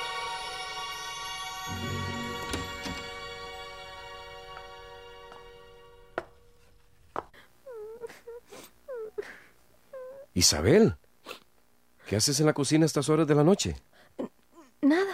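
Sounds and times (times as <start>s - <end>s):
woman sobbing and whimpering in a kitchen at night: 7.6s - 10.3s, 14.2s - 15.1s
speech: 10.4s - 11.0s, 12.1s - 13.9s.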